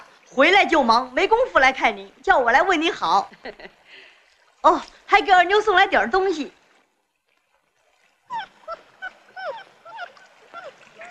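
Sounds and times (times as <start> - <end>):
speech: 0.3 - 4.0, 4.6 - 6.6
puppy yelping and whimpering: 8.3 - 11.0.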